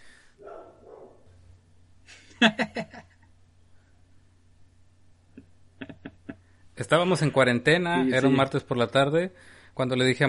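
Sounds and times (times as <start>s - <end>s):
female dog barking muffled: 0.4s - 1.3s
laughter: 2.1s - 3.2s, 5.8s - 6.4s
speech: 2.4s - 2.7s, 6.8s - 10.2s.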